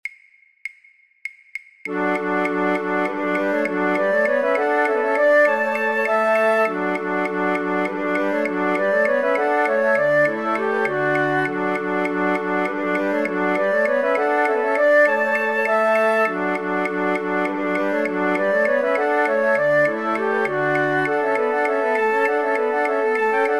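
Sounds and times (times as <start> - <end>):
flute choir playing all parts as practice tracks: 1.9 - 23.5.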